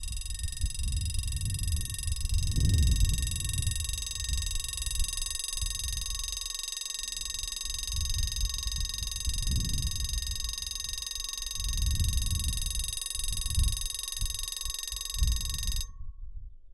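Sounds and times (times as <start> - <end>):
railway crossing barrier bell ringing: 0.0 - 15.9.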